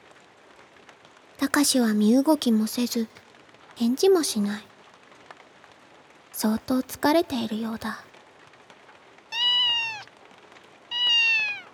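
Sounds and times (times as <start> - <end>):
faint hiss: 0.0 - 11.7
speech: 1.5 - 3.2, 3.8 - 4.7, 6.4 - 8.1
kitten meowing: 9.3 - 10.1, 10.9 - 11.7.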